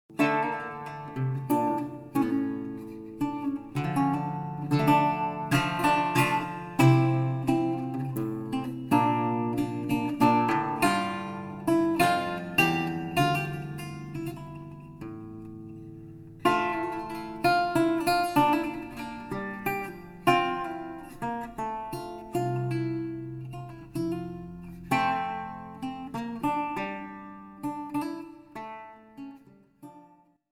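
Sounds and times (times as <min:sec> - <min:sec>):
French lute saraband: 0:00.1 - 0:29.5.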